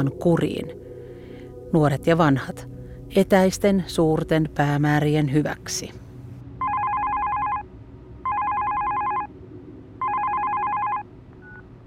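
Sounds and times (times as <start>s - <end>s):
speech: 0.0s - 0.9s, 1.7s - 6.0s
telephone ringing: 6.6s - 7.6s, 8.2s - 9.3s, 10.0s - 11.6s.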